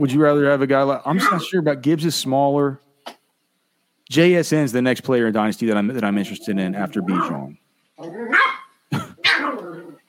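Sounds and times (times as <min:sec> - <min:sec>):
speech: 0:00.0 - 0:02.8, 0:04.1 - 0:08.5
dog barking: 0:01.2 - 0:01.5, 0:08.3 - 0:09.6.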